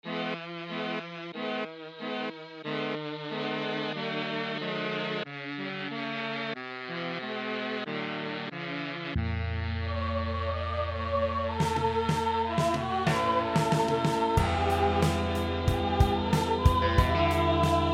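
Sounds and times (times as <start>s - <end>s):
mellotron: 0.0s - 17.9s.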